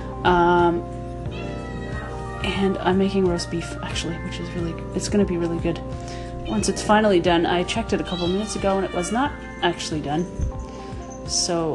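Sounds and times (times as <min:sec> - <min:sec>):
faint hum: 0:00.0 - 0:11.7
cat meowing loudly: 0:01.3 - 0:02.5, 0:08.0 - 0:11.2
speech: 0:02.4 - 0:10.5, 0:11.3 - 0:11.7.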